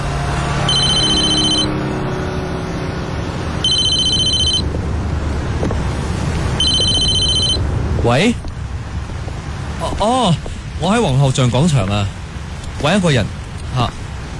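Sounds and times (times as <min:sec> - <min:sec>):
low traffic rumble: 0:00.0 - 0:14.3
mobile phone ringing with high electronic trilling: 0:00.7 - 0:01.7, 0:03.6 - 0:04.6, 0:06.6 - 0:07.6
speech: 0:08.1 - 0:08.4, 0:10.0 - 0:12.2, 0:12.8 - 0:14.0.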